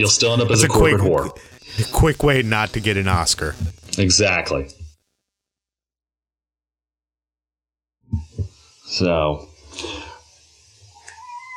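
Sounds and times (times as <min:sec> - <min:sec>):
speech: 0:00.0 - 0:04.8, 0:08.9 - 0:10.0
cat meowing: 0:11.0 - 0:11.5.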